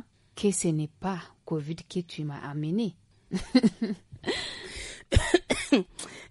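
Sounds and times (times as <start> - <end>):
speech: 0.4 - 6.2
coughing brought on by incense smoke in a home: 4.8 - 6.1.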